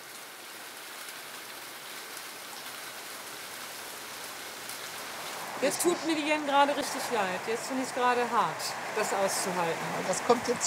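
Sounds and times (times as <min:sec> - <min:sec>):
steady rain falling on surfaces: 0:00.0 - 0:10.6
speech: 0:05.6 - 0:10.6.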